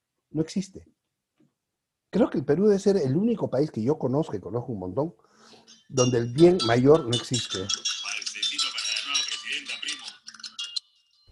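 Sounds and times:
speech: 0:00.3 - 0:01.0, 0:02.1 - 0:07.9
telephone ringing with a jangling metallic trill: 0:05.7 - 0:11.2.

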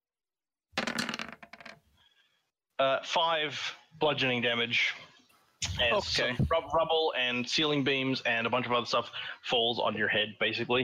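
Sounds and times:
dice rolling on a hard table: 0:00.8 - 0:01.8
speech: 0:02.8 - 0:05.1, 0:05.7 - 0:10.8.

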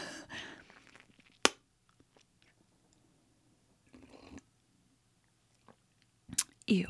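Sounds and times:
sipping from a martini glass: 0:00.6 - 0:01.4, 0:03.9 - 0:04.5
faint lip smack: 0:00.7 - 0:01.6, 0:06.3 - 0:06.6.

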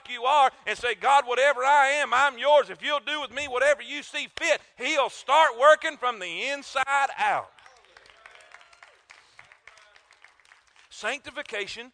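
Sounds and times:
speech: 0:00.1 - 0:07.6, 0:11.0 - 0:11.9
audience clapping in a steady rhythm: 0:07.5 - 0:11.7.

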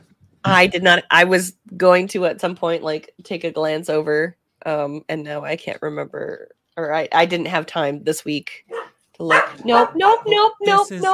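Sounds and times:
speech: 0:00.4 - 0:11.1
dog barking: 0:08.7 - 0:10.3.

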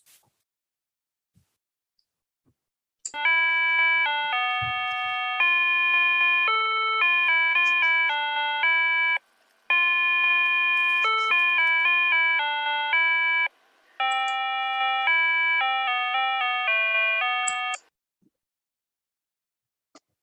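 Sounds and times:
electronic school bell chime at a children's school: 0:03.2 - 0:17.8.

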